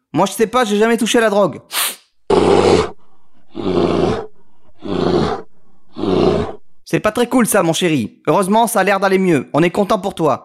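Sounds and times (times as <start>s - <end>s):
speech: 0.2s - 1.9s, 6.9s - 10.4s
bear roaring: 2.2s - 6.9s
rush of noise: 2.2s - 7.0s.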